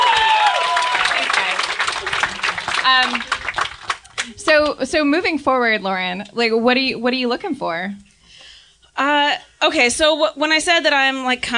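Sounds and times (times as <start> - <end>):
audience whoops: 0.0 - 1.5
small crowd audience applause: 0.0 - 4.4
speech: 2.9 - 3.2, 4.5 - 8.1, 9.0 - 11.5.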